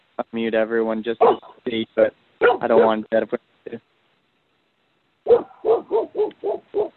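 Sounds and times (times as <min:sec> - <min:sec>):
speech: 0:00.2 - 0:03.9
dog barking: 0:01.2 - 0:01.6, 0:02.4 - 0:03.0, 0:05.2 - 0:06.9.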